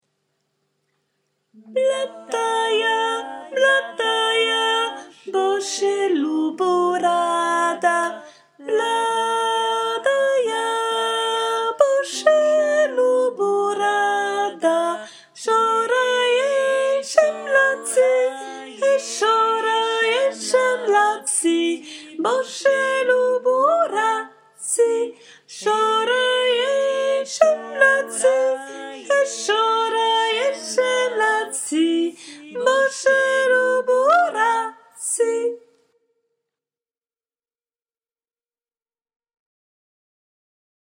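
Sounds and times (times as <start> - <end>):
soprano voice singing a song: 1.6 - 35.8.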